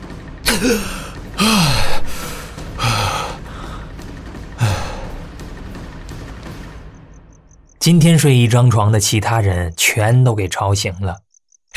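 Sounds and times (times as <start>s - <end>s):
speech: 0.5s - 1.7s, 7.8s - 11.2s
person gasping for fresh air after nearly being smothered: 0.5s - 4.0s, 4.6s - 5.2s.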